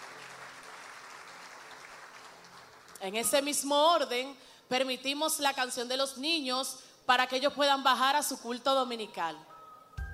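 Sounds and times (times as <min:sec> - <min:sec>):
church congregation applauding: 0:00.0 - 0:03.0
speech: 0:03.0 - 0:09.5.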